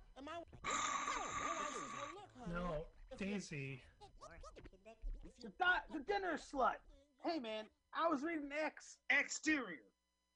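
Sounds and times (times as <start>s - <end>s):
person imitating a loud snore: 0.6s - 2.2s
speech: 3.2s - 4.4s, 5.4s - 9.9s.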